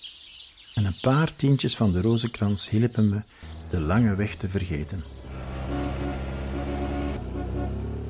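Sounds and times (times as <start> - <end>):
speech: 0.8 - 5.2
engine drone of passing cars: 3.4 - 8.0.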